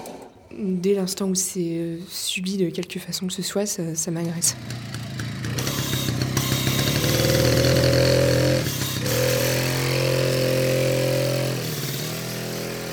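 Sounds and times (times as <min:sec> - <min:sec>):
speech: 0:00.5 - 0:05.2
decompressor motor engine droning: 0:04.5 - 0:12.9.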